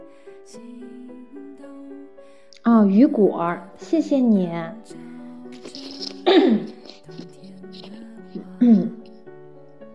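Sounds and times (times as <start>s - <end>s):
speech: 0.1s - 1.0s, 2.6s - 5.0s, 6.4s - 6.7s, 8.6s - 9.0s
throat clearing by a speaker covering the microphone: 5.7s - 7.1s, 8.6s - 9.0s.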